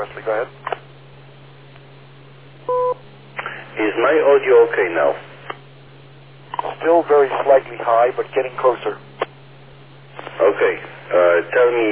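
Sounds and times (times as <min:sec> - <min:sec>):
speech: 0:00.0 - 0:00.7, 0:04.0 - 0:05.3, 0:06.8 - 0:09.1, 0:10.4 - 0:11.9
constant hiss on a radio link: 0:00.0 - 0:11.9
low hum on a radio link: 0:00.0 - 0:11.9
two-tone electronic beep on a radio link: 0:02.7 - 0:03.0.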